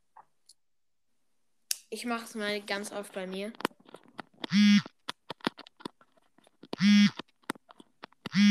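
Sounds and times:
speech: 1.9 - 3.7, 4.5 - 4.9
faint clicks and taps: 3.0 - 8.4
mobile phone vibrating against a hard surface: 4.5 - 4.9, 6.8 - 7.2, 8.3 - 8.4.

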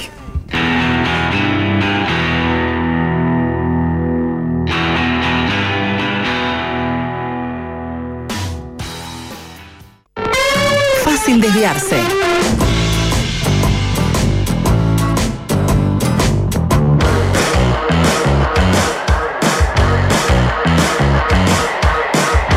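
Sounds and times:
loud rock song with heavily distorted electric guitars: 0.5 - 22.5
speech: 11.6 - 12.6.

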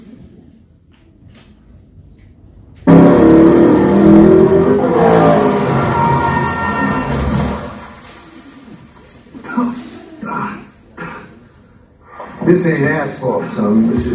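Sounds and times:
car engines revving: 2.8 - 8.3
speech: 12.5 - 14.1.

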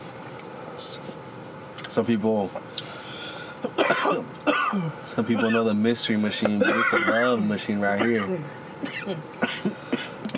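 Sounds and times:
speech: 1.9 - 2.8, 3.6 - 9.9
throat clearing: 3.6 - 5.6, 6.6 - 7.4, 8.0 - 10.3
coughing: 3.6 - 5.8, 6.5 - 10.3.

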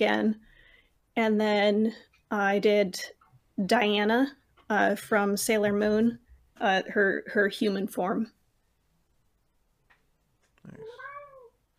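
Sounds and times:
speech: 0.0 - 0.5, 1.2 - 8.4
cat meowing: 10.8 - 11.6.

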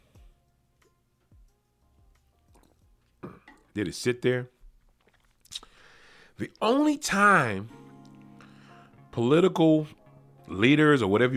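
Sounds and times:
soft gulping thumps of sipping a drink: 2.3 - 3.8, 4.6 - 6.6
brief wet slurp of a drink: 2.5 - 2.8, 4.9 - 5.7
speech: 3.8 - 4.6, 6.4 - 7.8, 9.2 - 11.3.

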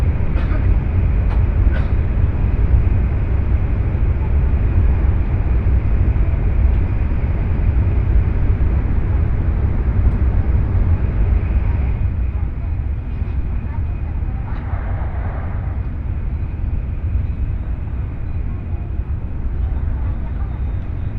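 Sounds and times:
bullet train running rumble heard from inside: 0.0 - 21.1.

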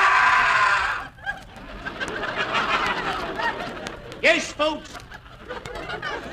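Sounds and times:
wild inhuman scream at a carnival sideshow: 0.0 - 1.1
laughter: 0.8 - 6.3
speech: 4.3 - 5.0.

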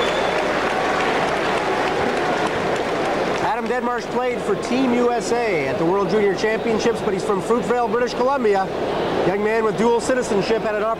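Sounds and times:
large crowd polite applause in an ice hockey arena: 0.0 - 5.0
speech: 3.6 - 10.9.

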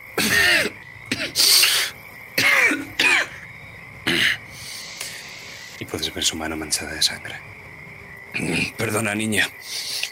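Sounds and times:
wounded man coughing harshly: 0.2 - 1.5, 2.4 - 3.4
speech: 6.1 - 7.6, 8.4 - 10.1.

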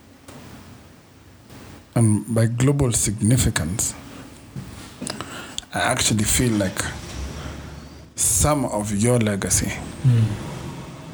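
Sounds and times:
speech: 2.0 - 4.1, 5.7 - 7.0, 8.2 - 10.5
car passing outside: 6.3 - 8.2, 9.4 - 11.1.

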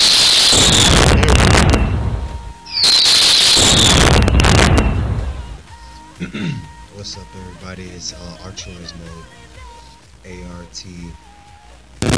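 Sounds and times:
fireworks crackling and popping: 0.0 - 5.7, 12.0 - 12.1
speech: 6.3 - 9.5, 10.2 - 11.3.

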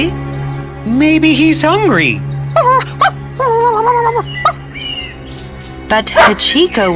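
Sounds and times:
speech: 0.8 - 3.1, 3.7 - 4.6, 5.9 - 6.9
dog yelping: 2.8 - 3.7.

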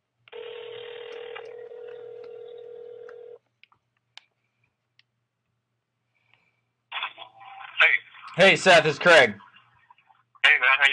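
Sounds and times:
telephone line tone humming: 0.3 - 3.4
speech: 8.4 - 9.4.

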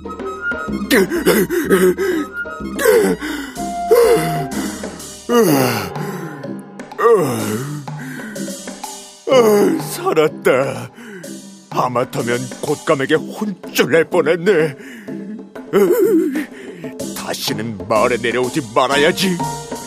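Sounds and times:
speech: 0.5 - 4.7, 5.3 - 5.9, 9.3 - 10.9, 11.8 - 15.0, 15.7 - 16.5, 17.3 - 19.8
voice acting out a tiger's heavy gasping breaths: 0.9 - 6.5, 7.1 - 8.6, 10.8 - 11.4, 14.7 - 17.1.

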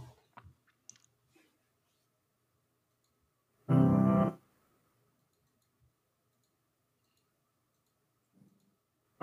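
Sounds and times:
computer mouse clicks: 5.2 - 8.8.

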